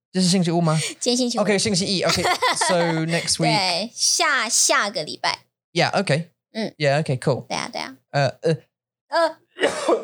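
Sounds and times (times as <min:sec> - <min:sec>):
speech: 0:00.1 - 0:10.0
laughter: 0:01.7 - 0:03.6
person coughing: 0:09.6 - 0:10.0.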